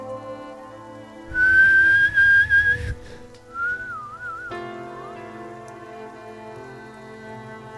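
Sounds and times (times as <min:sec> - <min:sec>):
quiet tonal background: 0:00.0 - 0:07.7
loud whistle: 0:01.3 - 0:05.1.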